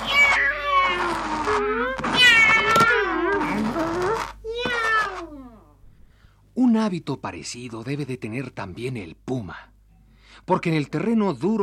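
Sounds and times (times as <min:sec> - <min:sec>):
domestic cat meowing with long drawn-out wailing calls: 0:00.0 - 0:05.4
speech: 0:06.8 - 0:09.7, 0:10.4 - 0:11.6.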